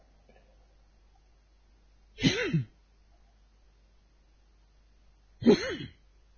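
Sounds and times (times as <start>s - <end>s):
person sneezing: 2.2s - 2.8s, 5.4s - 6.0s.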